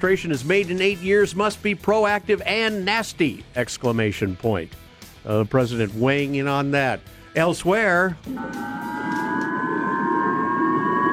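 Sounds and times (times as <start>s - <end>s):
speech: 0.0s - 8.9s
Japanese civil defense warning sirens blaring during missile launch: 8.3s - 11.1s.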